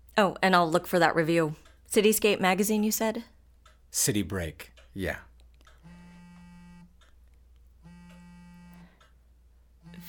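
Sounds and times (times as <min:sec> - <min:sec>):
speech: 0:00.2 - 0:03.3, 0:03.9 - 0:05.3
phone ringing with harsh buzzy tones: 0:05.8 - 0:06.9, 0:07.8 - 0:09.0, 0:09.8 - 0:10.0.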